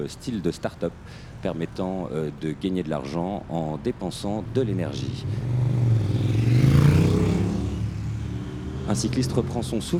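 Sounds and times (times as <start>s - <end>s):
speech: 0.0s - 5.7s, 8.9s - 9.9s
flowing street traffic: 0.0s - 9.9s
Citroën car driving past: 4.5s - 9.9s.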